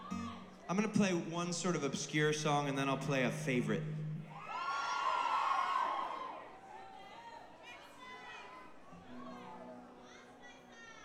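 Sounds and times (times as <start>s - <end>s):
concert audience yelling: 0.0s - 1.7s, 4.2s - 9.8s
lively murmur of scattered crowd voices and calls: 0.0s - 11.0s
speech: 0.7s - 4.0s.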